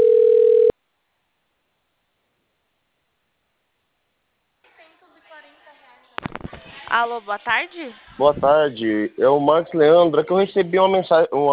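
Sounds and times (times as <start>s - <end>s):
telephone tone of an incoming call: 0.0s - 0.7s
speech: 6.9s - 11.5s.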